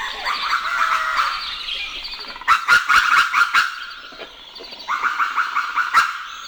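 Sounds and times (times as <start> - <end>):
dawn birdsong at sunrise in Sonoma Valley, California: 0.0 - 6.4.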